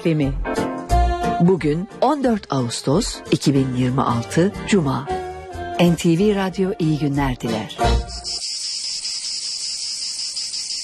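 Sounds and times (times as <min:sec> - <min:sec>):
speech: 0:00.0 - 0:00.5, 0:01.4 - 0:05.2, 0:05.8 - 0:08.5
cicadas singing in summer: 0:08.0 - 0:10.8.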